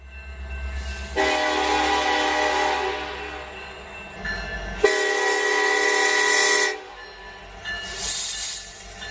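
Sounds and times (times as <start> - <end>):
low rumble of rail noise: 0.0 - 9.1
train horn blasts: 1.1 - 3.6, 4.8 - 7.0
brief high hiss: 7.8 - 9.1.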